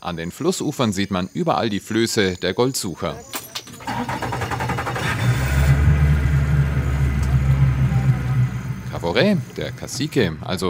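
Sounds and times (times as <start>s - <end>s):
speech: 0.0s - 4.5s, 9.0s - 10.6s
motorboat engine running: 3.9s - 10.4s.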